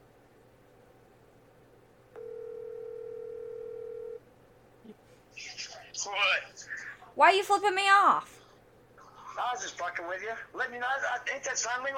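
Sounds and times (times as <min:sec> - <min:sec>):
telephone ringback tone while a call is being placed: 0:02.2 - 0:04.2
speech: 0:06.0 - 0:06.6, 0:07.2 - 0:08.3, 0:09.4 - 0:11.9.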